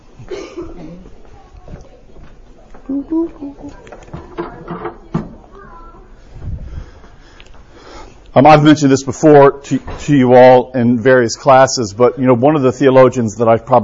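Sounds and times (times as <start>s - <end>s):
cough-like sound: 0.2s - 1.1s
speech: 2.9s - 4.0s, 8.4s - 13.8s
door swinging shut: 3.8s - 5.5s.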